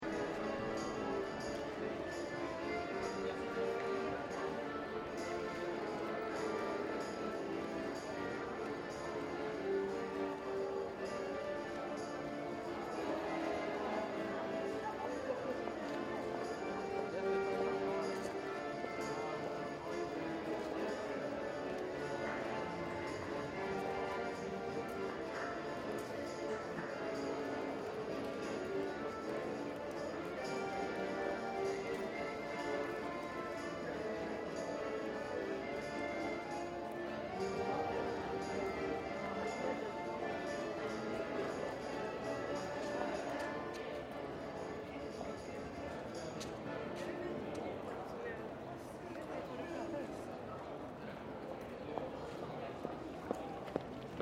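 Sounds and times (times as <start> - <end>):
street musicians playing Russian-inspired folk music on accordion: 0.0 - 14.7, 15.6 - 43.7
street musicians playing tambourine: 0.0 - 47.2
medium street crowd: 0.0 - 54.1.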